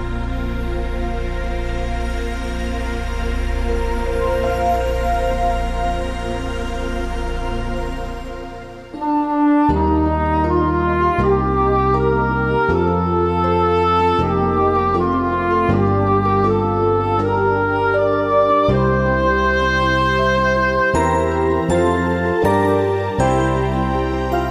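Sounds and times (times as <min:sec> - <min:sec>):
clarinets playing an instrumental hymn: 0:00.1 - 0:24.4.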